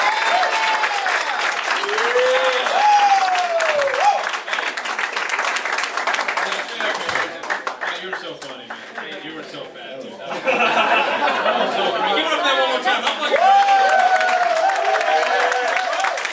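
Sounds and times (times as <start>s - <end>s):
people whooping and cheering: 0.0s - 4.6s, 13.2s - 16.3s
room full of people applauding: 0.0s - 9.4s, 12.9s - 16.3s
laughter: 10.2s - 13.3s.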